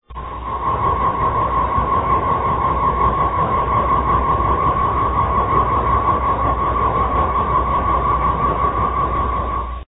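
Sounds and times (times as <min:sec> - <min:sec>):
echoing balloon: 0:00.0 - 0:09.8.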